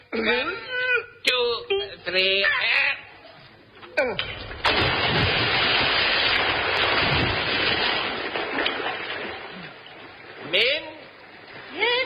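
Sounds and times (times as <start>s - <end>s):
speech: 0.1s - 0.7s, 2.1s - 2.8s
heavy object thrown into a river splashing: 4.2s - 10.5s
churning rushing river water: 4.5s - 11.9s.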